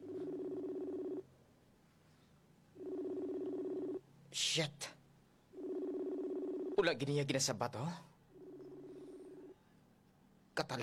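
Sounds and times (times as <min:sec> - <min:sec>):
cellphone call tone in buzzing bursts: 0:00.0 - 0:01.3, 0:02.8 - 0:04.0, 0:05.6 - 0:06.8, 0:08.4 - 0:09.6
speech: 0:04.4 - 0:04.9, 0:06.8 - 0:08.1, 0:10.6 - 0:10.8.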